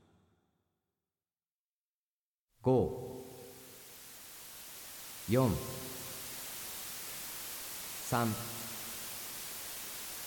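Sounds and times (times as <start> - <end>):
speech: 2.6 - 3.0, 5.3 - 5.7, 8.1 - 8.6
steady white-noise hiss for relaxation: 2.8 - 10.2.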